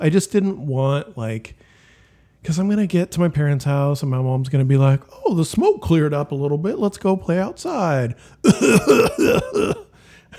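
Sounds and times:
speech: 0:00.0 - 0:01.7, 0:02.4 - 0:10.3
child coughing: 0:08.5 - 0:09.9.

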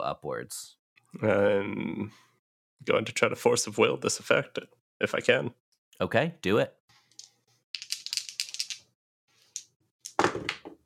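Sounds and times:
speech: 0:00.0 - 0:06.8
dice rolled in a game rattling on a hard surface: 0:07.1 - 0:10.7.

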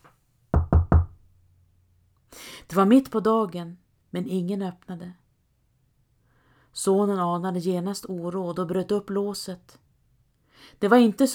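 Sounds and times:
son knocking firmly on the wooden door of his mother's home: 0:00.6 - 0:01.2
speech: 0:02.7 - 0:05.2, 0:06.8 - 0:09.8, 0:10.6 - 0:11.3.

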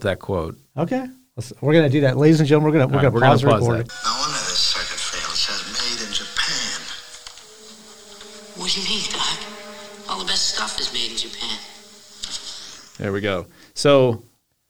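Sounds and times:
speech: 0:00.0 - 0:04.4, 0:08.7 - 0:09.4, 0:10.2 - 0:11.7, 0:13.0 - 0:14.3
eerie film score music with low droning tones: 0:03.9 - 0:13.0.

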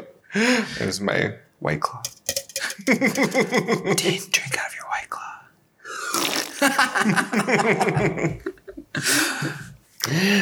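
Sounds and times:
speech: 0:00.3 - 0:02.2, 0:02.8 - 0:04.8, 0:06.6 - 0:10.3
raspy fart: 0:06.1 - 0:06.7
laughter: 0:06.6 - 0:09.7.

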